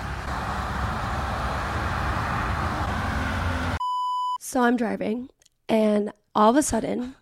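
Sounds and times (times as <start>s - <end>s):
road traffic roar along a roadside: 0.0s - 3.8s
speech: 4.5s - 7.2s.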